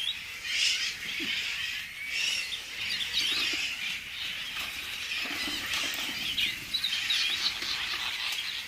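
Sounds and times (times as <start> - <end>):
released birds chirping and squealing: 0.0 - 8.6
bird wings fluttering: 3.2 - 8.6.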